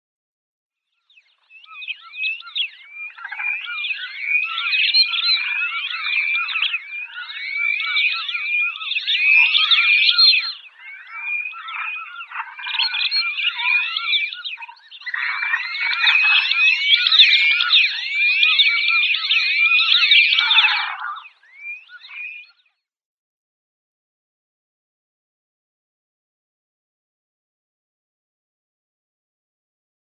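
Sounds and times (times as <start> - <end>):
Red-billed Duck: 1.8 - 22.6.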